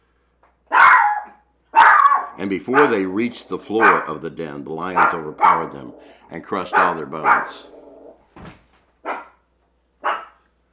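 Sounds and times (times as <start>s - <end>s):
dog barking: 0.7s - 4.2s, 4.9s - 5.9s, 6.7s - 8.0s, 9.0s - 9.4s, 10.0s - 10.4s
speech: 2.4s - 7.8s.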